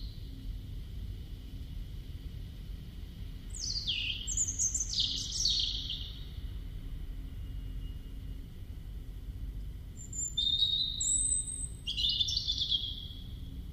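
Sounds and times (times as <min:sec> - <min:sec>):
steady low background hiss: 0:00.0 - 0:13.7
European robin Erithacus rubecula singing: 0:03.5 - 0:06.4, 0:09.9 - 0:13.5.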